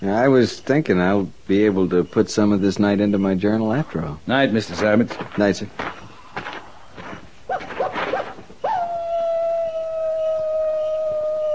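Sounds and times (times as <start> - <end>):
speech: 0.0 - 6.0
coyote yipping and howling: 7.4 - 11.5.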